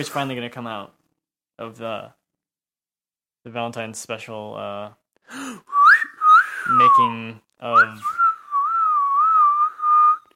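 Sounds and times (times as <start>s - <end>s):
speech: 0.0s - 1.0s, 1.6s - 2.2s, 3.4s - 5.8s, 6.7s - 8.2s
person whistling a short wavering tune: 5.7s - 10.3s.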